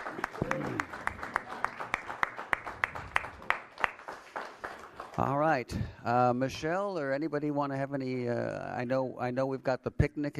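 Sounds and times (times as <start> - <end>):
small audience applause: 0.0 - 5.4
speech: 5.2 - 10.3.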